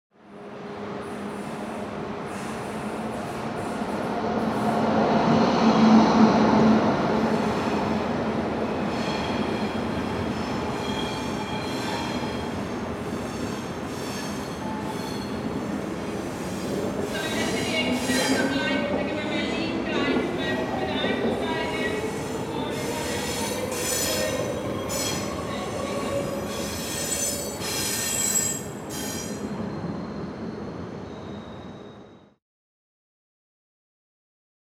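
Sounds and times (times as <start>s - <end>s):
train arriving at a railway station: 0.3s - 32.4s.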